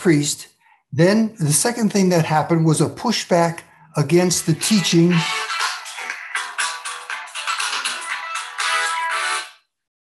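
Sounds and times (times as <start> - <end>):
speech: 0.0 - 5.5
phone ringtone for an incoming call: 4.5 - 9.6.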